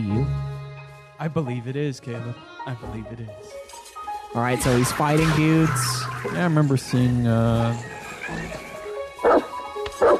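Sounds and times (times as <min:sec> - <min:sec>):
speech: 0:01.2 - 0:03.7, 0:04.3 - 0:09.4
dog barking: 0:09.2 - 0:10.1.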